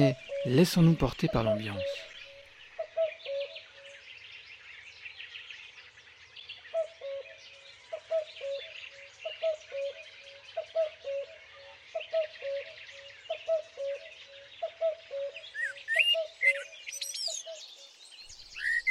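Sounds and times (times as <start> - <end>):
speech: 0.0 - 2.1
low steady repeating bird call: 0.0 - 4.0, 7.9 - 17.6
springtime dawn chorus of birds chirping and trilling: 0.0 - 18.9.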